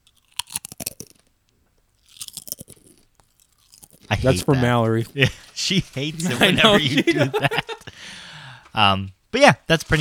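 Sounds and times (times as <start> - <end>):
potato chips from an opened bag crunching: 0.0 - 1.3, 2.0 - 5.2
speech: 4.1 - 7.7, 8.8 - 10.0
laughter: 4.1 - 8.0.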